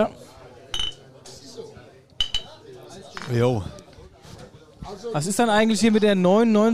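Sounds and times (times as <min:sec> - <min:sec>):
speech: 0:00.0 - 0:00.2, 0:03.3 - 0:03.8, 0:04.9 - 0:06.7
murmur of noise: 0:00.0 - 0:06.7
glasses clinking in a toast: 0:00.8 - 0:01.0, 0:02.2 - 0:02.5.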